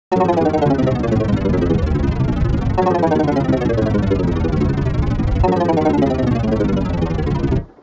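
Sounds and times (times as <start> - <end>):
descending note sequence: 0.0 - 7.8.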